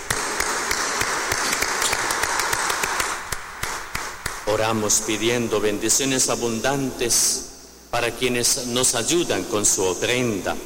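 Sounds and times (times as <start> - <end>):
crowd applauding in congratulation for birthdays: 0.0 - 4.1
speech: 4.5 - 10.6.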